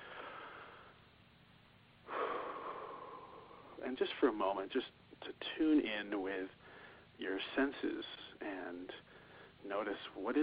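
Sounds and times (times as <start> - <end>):
deep breaths during a guided breathing exercise: 0.0 - 1.0, 2.0 - 3.8, 6.6 - 7.2, 9.0 - 9.6
speech: 3.8 - 6.6, 7.2 - 10.4.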